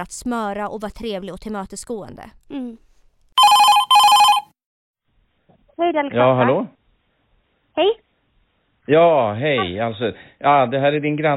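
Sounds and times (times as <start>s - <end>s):
speech: 0.0s - 2.8s, 5.8s - 6.8s, 7.8s - 8.0s, 8.9s - 11.3s
telephone ringing with bright trilling bursts: 3.4s - 4.5s.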